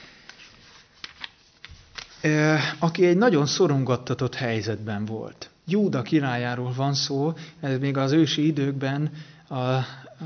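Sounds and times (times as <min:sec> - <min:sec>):
pages of a Bible being turned: 0:00.0 - 0:02.3
speech: 0:02.2 - 0:10.2.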